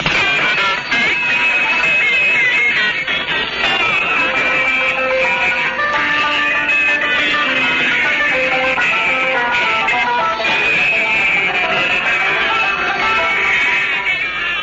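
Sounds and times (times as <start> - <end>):
shortwave radio adjacent channel interference with wavering tones: 0.0 - 14.6.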